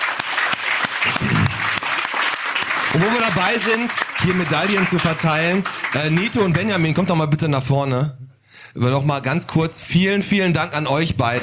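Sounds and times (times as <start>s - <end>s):
crowd applauding a medal recipient at an awards moment: 0.0s - 7.1s
speech: 3.0s - 11.4s.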